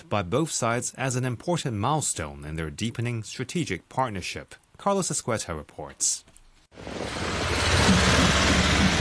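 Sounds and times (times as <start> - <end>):
speech: 0.1 - 8.9
flag-adorned trucks roaring across a two-lane road bridge over the Tumen River: 6.8 - 8.9.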